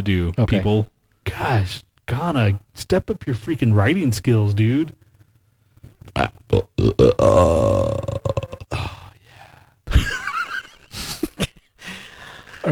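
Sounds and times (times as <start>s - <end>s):
speech: 0.0s - 5.0s, 6.1s - 8.4s
gulping and grunting bursts: 6.0s - 9.6s
long rumbling burp: 6.1s - 9.1s.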